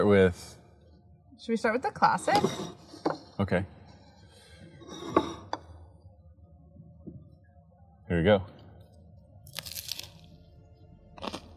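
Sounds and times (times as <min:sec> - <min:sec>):
speech: 0:00.0 - 0:00.6, 0:01.4 - 0:03.8, 0:08.1 - 0:08.6
low steady hum: 0:00.0 - 0:11.5
crunchy bite into a crisp BLT sandwich: 0:09.5 - 0:10.4, 0:11.1 - 0:11.5.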